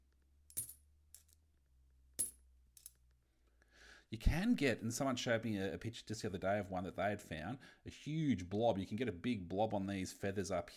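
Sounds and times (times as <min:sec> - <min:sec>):
10 cent coins being sorted dropping onto a hard surface: 0:00.5 - 0:01.4, 0:02.2 - 0:03.0
speech: 0:04.1 - 0:10.7.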